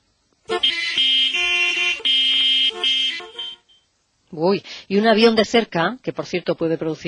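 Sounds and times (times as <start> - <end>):
busy traffic: 0.4 - 3.8
car horns honking in busy traffic: 0.5 - 3.8
speech: 4.4 - 7.0.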